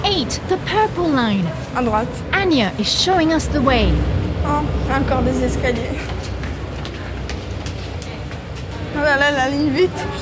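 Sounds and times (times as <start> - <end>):
Paris metro train rumbling through an underground station: 0.0 - 10.2
speech: 0.2 - 6.2, 9.0 - 10.2
sharp rhythmic clacks of the rails: 2.8 - 10.2.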